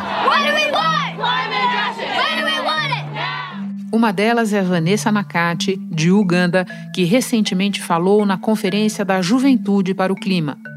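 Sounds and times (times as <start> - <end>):
crowd of protesters chanting climate justice slogans: 0.0 - 3.7
speech: 4.0 - 10.7.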